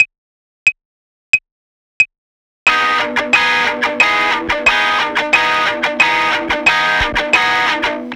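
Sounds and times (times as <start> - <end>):
on-beat claps: 2.7 - 8.1.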